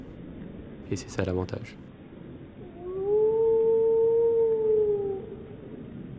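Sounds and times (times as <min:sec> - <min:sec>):
speech: 0:00.9 - 0:01.8
wolf howling: 0:02.6 - 0:05.8.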